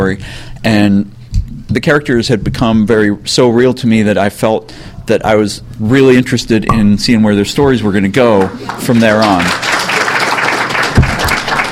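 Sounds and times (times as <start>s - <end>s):
speech: 0.0s - 9.7s
audience applause: 8.4s - 11.7s.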